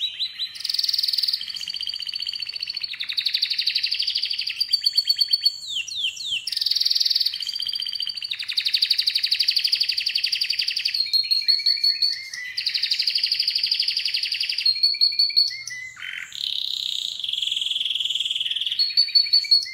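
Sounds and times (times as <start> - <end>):
canary song with rapid rolling trills and buzzy rattling tours: 0.0 - 19.7.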